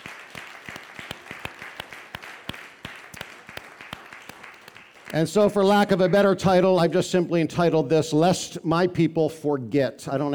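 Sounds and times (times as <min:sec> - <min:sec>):
crowd applauding: 0:00.0 - 0:06.3
speech: 0:05.1 - 0:10.3.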